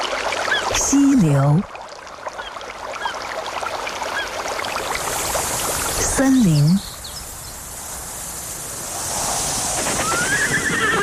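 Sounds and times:
wind over open grassland: 0.0s - 11.0s
speech: 0.9s - 1.8s, 6.2s - 6.9s
horse whinnying: 10.0s - 11.0s.

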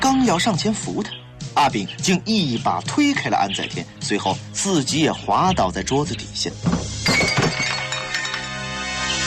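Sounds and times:
speech: 0.2s - 6.8s
wine glass shattering on a hard floor: 6.7s - 9.1s
broken wine glass ringing: 7.0s - 9.1s.

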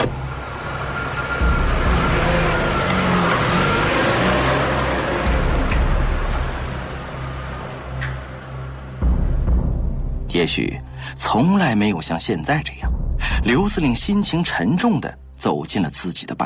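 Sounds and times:
sedan engine starting and driving off: 0.0s - 9.8s
speech: 10.4s - 16.4s.

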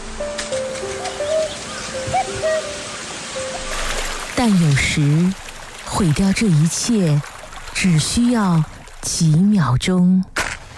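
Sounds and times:
steady rain-like rustling hiss in a forest: 0.0s - 4.4s
short high bird calls: 0.3s - 4.3s
owl hooting softly: 1.1s - 3.7s
speech: 4.4s - 10.4s.

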